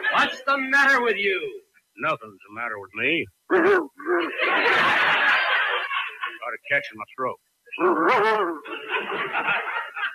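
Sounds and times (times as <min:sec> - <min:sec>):
laughter: 0:00.0 - 0:00.5, 0:03.5 - 0:06.6, 0:07.8 - 0:10.1
speech: 0:00.2 - 0:05.2, 0:06.5 - 0:09.7
man imitating a dog yelp: 0:03.5 - 0:04.3, 0:07.8 - 0:08.6.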